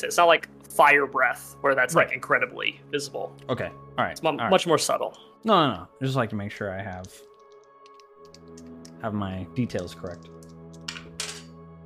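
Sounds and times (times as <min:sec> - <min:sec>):
speech: 0:00.0 - 0:07.3, 0:08.6 - 0:10.4
dice rolled across a tabletop: 0:10.2 - 0:11.5.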